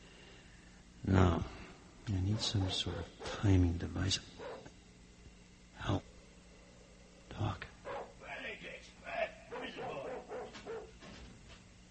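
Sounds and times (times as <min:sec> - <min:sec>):
speech: 0:01.0 - 0:04.4
dog barking: 0:02.3 - 0:03.6, 0:04.4 - 0:04.7, 0:07.8 - 0:08.2, 0:09.5 - 0:11.0.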